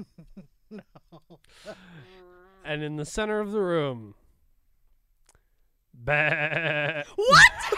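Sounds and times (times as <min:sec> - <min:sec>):
speech: 0:02.6 - 0:04.2, 0:06.0 - 0:07.7
sheep bleating: 0:06.0 - 0:07.2.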